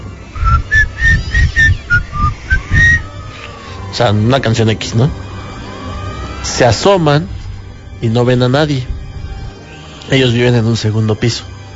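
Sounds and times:
person whistling a tune outside a bedroom door: 0:00.4 - 0:03.2
speech: 0:04.0 - 0:05.3, 0:06.4 - 0:07.4, 0:08.0 - 0:08.9, 0:10.1 - 0:11.5.

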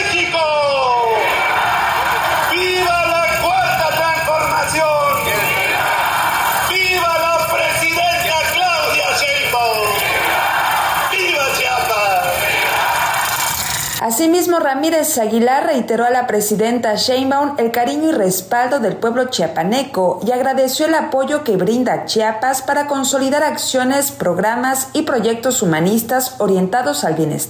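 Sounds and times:
large crowd shouting in unison: 0:00.0 - 0:13.8
speech: 0:14.2 - 0:27.4.

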